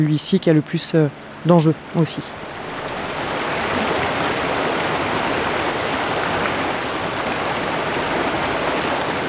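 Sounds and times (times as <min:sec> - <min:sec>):
speech: 0:00.0 - 0:02.6
mountain river stream flowing: 0:00.0 - 0:09.2.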